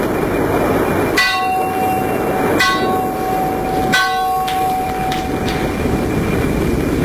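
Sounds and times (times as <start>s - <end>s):
rushing sea: 0.0s - 7.0s
rushing wind: 0.0s - 7.0s
large ship's bell ringing on mast in fog: 1.1s - 6.7s.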